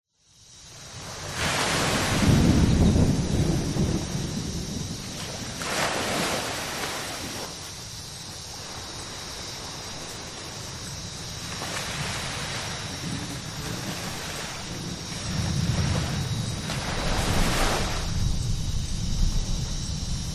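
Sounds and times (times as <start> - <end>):
insects: 0.1 - 20.3
ocean waves on a tropical beach: 0.6 - 20.3
approaching thunderstorm: 1.2 - 7.4, 11.5 - 20.3.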